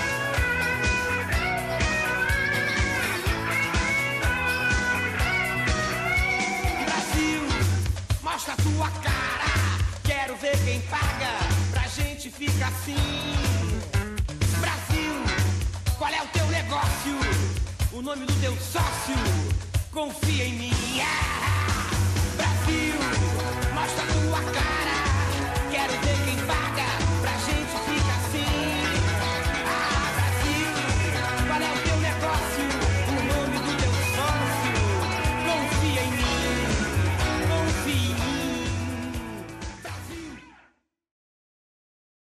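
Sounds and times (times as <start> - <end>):
Brazilian rock song from 1988 with male vocals: 0.0 - 40.6
speech: 18.0 - 21.8.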